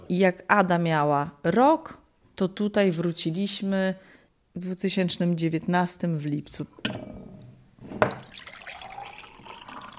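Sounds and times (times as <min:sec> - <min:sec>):
speech: 0:00.1 - 0:07.1
water poured from a raised kettle into a mug: 0:08.1 - 0:09.9.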